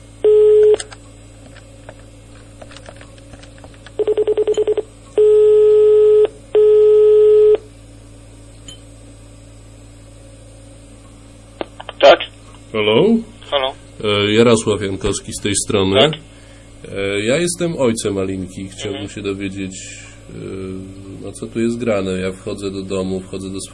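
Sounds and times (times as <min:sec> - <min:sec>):
quiet hum: 0:00.0 - 0:23.7
brief telephone tone: 0:00.2 - 0:00.9, 0:04.0 - 0:07.7
speech: 0:14.0 - 0:16.3, 0:17.0 - 0:23.7.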